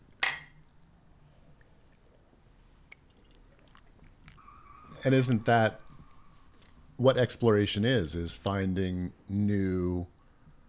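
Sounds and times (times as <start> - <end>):
mugs clinking together in a toast: 0.2 - 0.6
speech: 5.0 - 5.8, 7.0 - 10.1.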